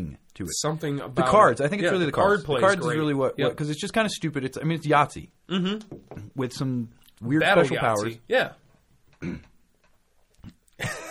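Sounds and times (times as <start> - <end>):
speech: 0.1 - 8.6, 9.2 - 9.5
person clearing throat: 9.2 - 9.6.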